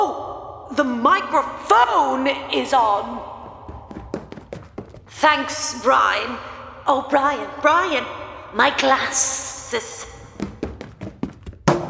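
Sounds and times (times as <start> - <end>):
speech: 0.7 - 3.3, 5.1 - 10.1
cane knocked from hand clattering on hard floor: 3.4 - 5.1, 10.4 - 11.8.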